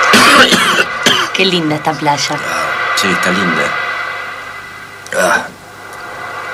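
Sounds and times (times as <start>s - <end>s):
short sharp cough at a beach: 0.1s - 1.3s
speech: 1.4s - 3.9s, 5.2s - 5.5s.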